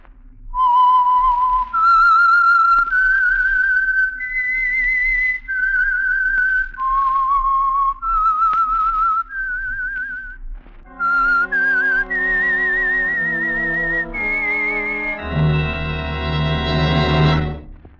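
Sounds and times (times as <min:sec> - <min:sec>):
whistled signature tune melody: 0:00.6 - 0:17.7
fuller instruments playing the signature tune: 0:10.8 - 0:17.9.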